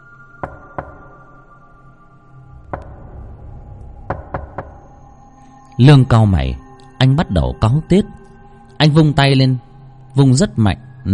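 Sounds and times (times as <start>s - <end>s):
knocking on a door: 0.4s - 1.3s, 2.7s - 3.2s, 4.0s - 4.9s
speech: 5.8s - 8.2s, 8.8s - 11.1s.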